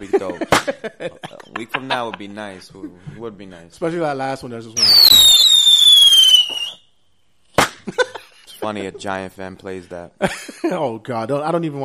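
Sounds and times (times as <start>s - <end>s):
laughter: 0.0s - 3.0s, 7.8s - 9.2s
speech: 0.0s - 5.4s, 8.7s - 11.8s
firework piercing whistle: 4.8s - 6.9s.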